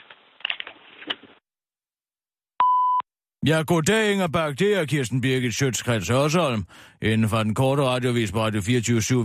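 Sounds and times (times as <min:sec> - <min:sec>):
electronic beep from a mobile phone's voicemail: 0:02.6 - 0:03.1
speech: 0:03.4 - 0:09.2.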